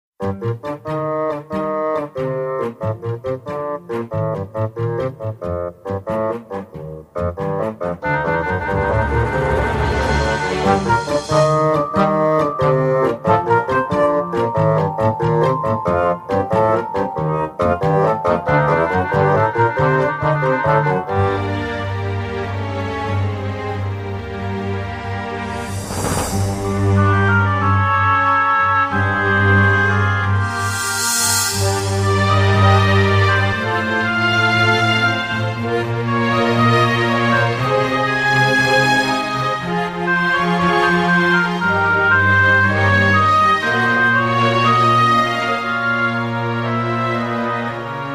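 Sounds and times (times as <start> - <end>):
lute: 0.2 - 48.1.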